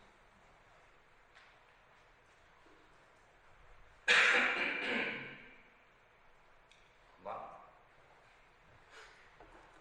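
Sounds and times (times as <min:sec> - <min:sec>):
person coughing during allergy season: 0:04.1 - 0:05.5.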